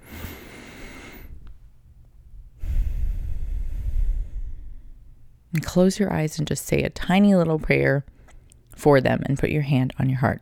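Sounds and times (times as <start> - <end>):
deep breath in and out: 0.0 - 1.5, 2.6 - 5.1
speech: 5.6 - 8.2, 8.8 - 10.4.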